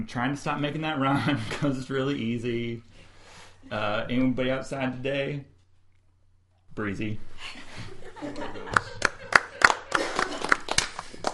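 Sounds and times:
speech: 0:00.0 - 0:05.5, 0:06.8 - 0:08.8
laughter: 0:07.5 - 0:11.3
hands clapping: 0:08.7 - 0:11.3.

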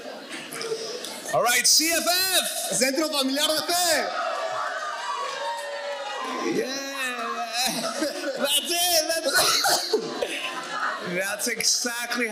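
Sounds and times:
audience members greeting one another and chattering: 0:00.0 - 0:12.2
speech: 0:01.3 - 0:04.2, 0:11.1 - 0:12.2
audience laughter: 0:07.5 - 0:11.0.

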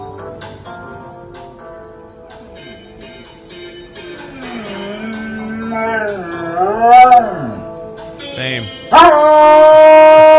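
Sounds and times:
dog howling: 0:04.4 - 0:07.7, 0:08.9 - 0:10.3.

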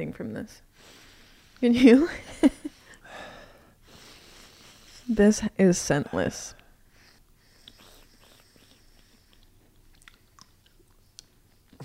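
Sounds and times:
speech: 0:00.0 - 0:01.0, 0:01.6 - 0:02.6, 0:05.1 - 0:06.6
chewing a flat chewy fruit-leather-like Chinese sweet disc: 0:07.6 - 0:11.8.

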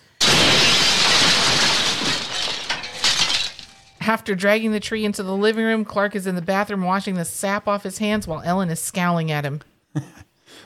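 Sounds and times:
window glass shattering from a blue spruce tree crashing through: 0:00.0 - 0:04.0
glass shards and debris tinkling and settling: 0:00.2 - 0:04.0
speech: 0:04.1 - 0:10.6.

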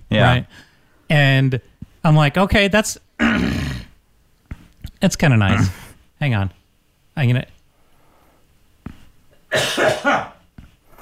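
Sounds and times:
speech: 0:00.2 - 0:03.7, 0:05.0 - 0:06.6, 0:07.2 - 0:07.5, 0:09.5 - 0:10.3
person coughing: 0:03.2 - 0:03.9, 0:05.5 - 0:05.9, 0:09.5 - 0:10.4.

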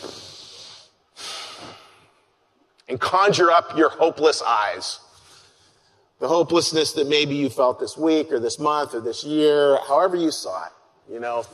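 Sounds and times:
person taking a deep breath: 0:00.0 - 0:02.1
speech: 0:02.9 - 0:05.0, 0:06.2 - 0:11.5.

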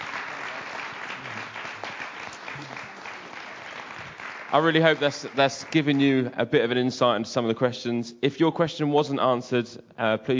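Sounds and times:
audience applause after a question session: 0:00.0 - 0:06.1
faint crowd murmurs: 0:00.3 - 0:03.1
speech: 0:04.5 - 0:10.3.

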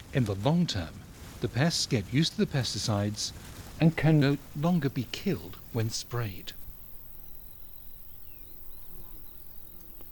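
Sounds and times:
soft noisy outdoor background: 0:00.0 - 0:10.0
speech: 0:00.1 - 0:06.6
large burrowing wasp buzzing in the Altiplano of Bolivia: 0:03.9 - 0:10.0.

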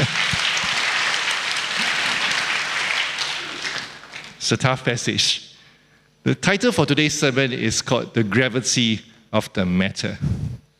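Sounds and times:
room full of people applauding: 0:00.0 - 0:04.4
speech: 0:04.5 - 0:05.5, 0:06.2 - 0:10.4.

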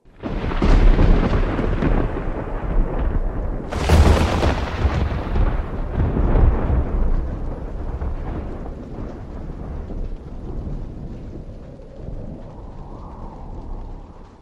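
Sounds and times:
deep rolling thunder in a heavy snowstorm: 0:00.0 - 0:14.3
sharp loud thunder crack: 0:00.2 - 0:11.5.

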